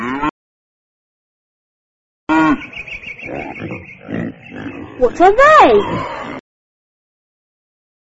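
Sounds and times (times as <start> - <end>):
animal grunts and snorts: 0.0 - 0.3, 2.3 - 6.4
cows mooing: 0.0 - 0.3, 2.3 - 6.4
speech: 2.6 - 6.4.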